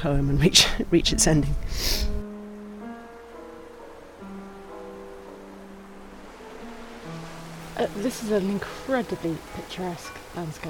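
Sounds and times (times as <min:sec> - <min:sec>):
speech: 0:00.0 - 0:02.2, 0:07.8 - 0:10.6
sustained shifting musical tones: 0:01.0 - 0:10.6
waves churning where three bodies of water meet: 0:04.2 - 0:10.6.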